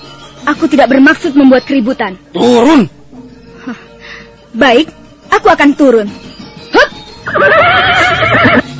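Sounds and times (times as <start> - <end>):
speech: 0.4 - 3.0, 3.6 - 3.8, 4.5 - 8.6
horse neighing during a night ride: 7.3 - 8.7.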